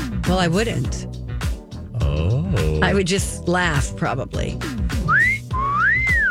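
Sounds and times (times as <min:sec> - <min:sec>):
speech: 0:00.3 - 0:01.2, 0:02.1 - 0:04.8
person whistling a clear bright tune: 0:05.0 - 0:06.2.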